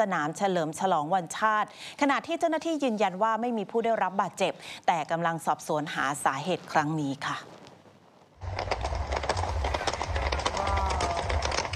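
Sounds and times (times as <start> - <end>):
speech: 0.0 - 7.6
loose horses galloping through a busy street at night: 8.4 - 11.7
indistinct voices of people in a busy street: 9.4 - 11.7.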